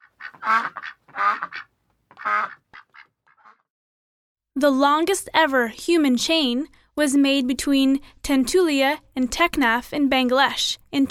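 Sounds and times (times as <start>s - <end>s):
duck quacking: 0.0s - 3.7s
speech: 0.5s - 0.9s, 4.6s - 11.0s.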